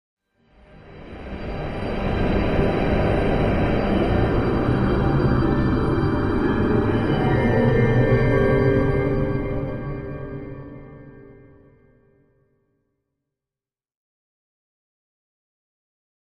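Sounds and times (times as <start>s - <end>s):
eerie orchestral sustain: 0.7s - 11.0s.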